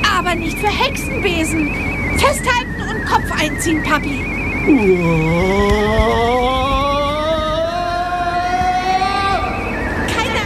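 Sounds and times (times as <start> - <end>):
car engine droning in a road tunnel: 0.0 - 10.4
speech: 0.3 - 6.7.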